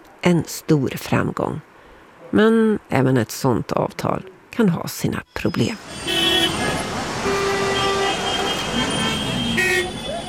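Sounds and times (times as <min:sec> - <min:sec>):
speech: 0:00.2 - 0:01.7, 0:02.3 - 0:06.1
car horns honking in front of railway station in New Delhi India: 0:05.8 - 0:10.2.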